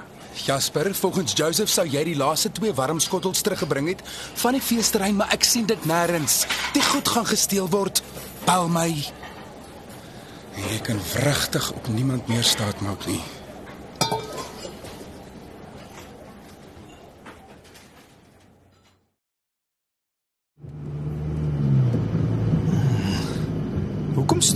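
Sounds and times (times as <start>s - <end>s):
speech: 0.4s - 9.2s, 10.6s - 13.4s, 24.4s - 24.5s
car engine humming with a low rumble: 20.6s - 24.5s.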